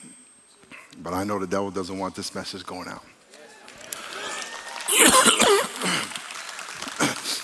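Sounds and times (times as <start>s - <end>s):
speech: 1.0s - 3.2s
preacher coughing during a sermon: 4.9s - 6.1s.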